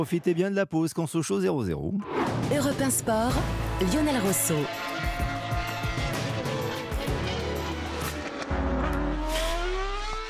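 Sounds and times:
speech: 0:00.0 - 0:05.4
Formula 1 race cars screaming past: 0:04.5 - 0:10.2.

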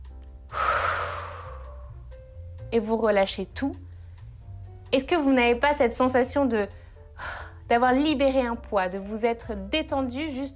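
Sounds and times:
person inhaling deeply: 0:00.5 - 0:02.0
speech: 0:02.7 - 0:03.8, 0:04.9 - 0:10.5.

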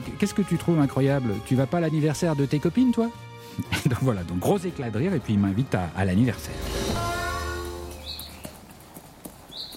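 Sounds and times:
speech: 0:00.2 - 0:07.0
bird chirps: 0:07.9 - 0:08.7, 0:09.5 - 0:09.7
horse hooves clip-clopping: 0:07.9 - 0:09.7.

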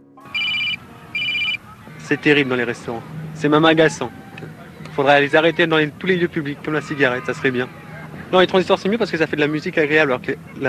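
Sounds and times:
faint noise: 0:00.0 - 0:10.6
laughter: 0:00.0 - 0:10.6
mobile phone ringtone: 0:00.1 - 0:02.0
speech: 0:02.1 - 0:04.2, 0:05.0 - 0:10.6.

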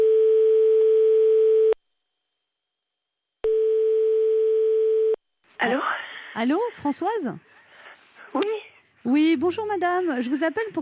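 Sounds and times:
telephone ringing tone while calling someone: 0:00.0 - 0:01.8, 0:03.4 - 0:05.2
speech: 0:05.6 - 0:07.5, 0:08.3 - 0:10.8.

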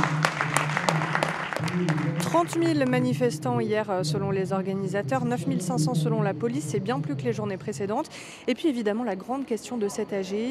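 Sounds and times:
crowd clapping at a union meeting: 0:00.0 - 0:03.3
speech: 0:01.8 - 0:10.4.

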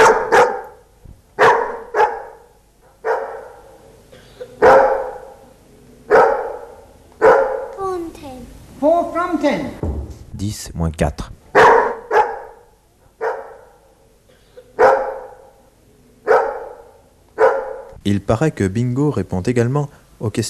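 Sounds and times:
dog barking: 0:00.0 - 0:03.9, 0:04.6 - 0:07.8, 0:11.5 - 0:14.0, 0:14.8 - 0:18.0
speech: 0:09.4 - 0:09.8, 0:10.4 - 0:11.4, 0:18.1 - 0:20.4.

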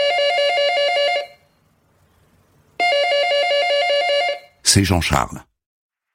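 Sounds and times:
telephone ringing with a trilling electronic bell: 0:00.0 - 0:01.5, 0:02.8 - 0:04.6
speech: 0:04.7 - 0:05.5.

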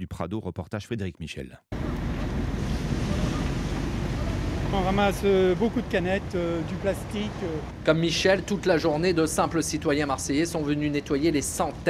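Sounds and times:
speech: 0:00.0 - 0:02.6, 0:04.7 - 0:11.8
wind noise: 0:01.8 - 0:06.6
sea surf rushing on the Prado city beach in Marseille: 0:01.8 - 0:09.2.

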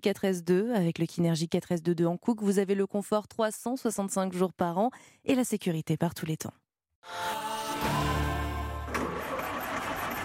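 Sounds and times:
speech: 0:00.0 - 0:08.1
car engine cranking with a weak battery, failing to start: 0:08.8 - 0:10.2.

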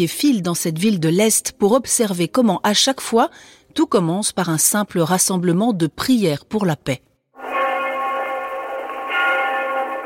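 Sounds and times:
speech: 0:00.0 - 0:07.1
church bell ringing: 0:07.4 - 0:10.0.

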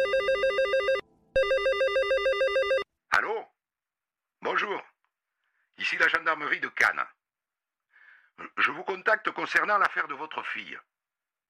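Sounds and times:
telephone ringing with an incoming call: 0:00.0 - 0:02.9
speech: 0:05.9 - 0:07.2, 0:08.4 - 0:10.9.

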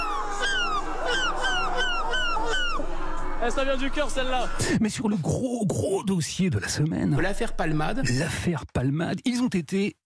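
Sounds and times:
person imitating seagull cries at the Dunkirk carnival: 0:00.0 - 0:02.8
faint crowd noise at the Dunkirk carnival: 0:00.0 - 0:04.8
speech: 0:03.4 - 0:10.0.

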